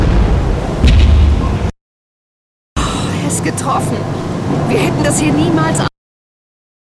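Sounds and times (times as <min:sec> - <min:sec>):
gunfire booming across open water: 0:00.0 - 0:01.7
sharp gunshot crack: 0:00.0 - 0:01.7
speech: 0:03.4 - 0:05.9.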